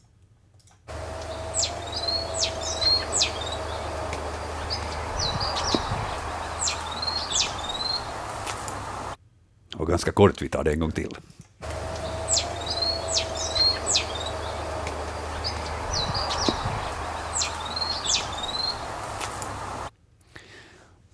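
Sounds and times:
steady low hum of outdoor ambience: 0:00.9 - 0:09.2, 0:11.6 - 0:19.9
great tit singing two-note phrases in mid-May: 0:01.0 - 0:09.2, 0:11.7 - 0:19.9
speech: 0:09.9 - 0:11.4.

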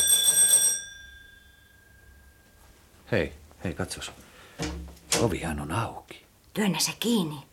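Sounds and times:
electric doorbell ringing in a rattling burst: 0:00.0 - 0:02.5
speech: 0:03.1 - 0:07.5.

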